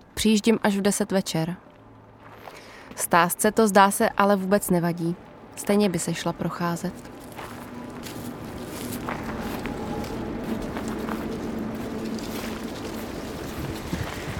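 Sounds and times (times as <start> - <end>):
speech: 0.2 - 1.7, 3.0 - 7.2
footsteps crunching walking uphill: 1.6 - 3.2, 6.2 - 14.3
two women breathing hard walking uphill among trees at night: 2.4 - 3.0
outdoor wind noise: 6.9 - 14.3.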